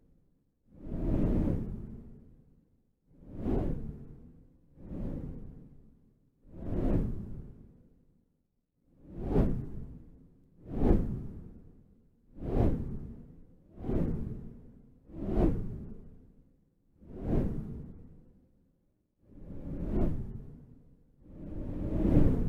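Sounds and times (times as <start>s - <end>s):
windy whooshes: 0.7s - 2.2s, 3.2s - 5.6s, 6.5s - 7.6s, 9.0s - 10.0s, 12.4s - 16.1s, 17.0s - 18.2s, 19.3s - 22.4s.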